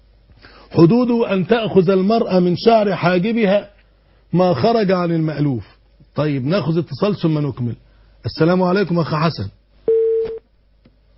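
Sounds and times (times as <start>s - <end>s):
speech: 0.7s - 3.7s, 4.3s - 9.6s
phone call cutting off into a busy tone beep: 9.9s - 10.4s.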